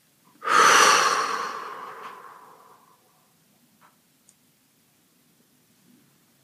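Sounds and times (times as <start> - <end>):
deep breath: 0.4 - 3.0.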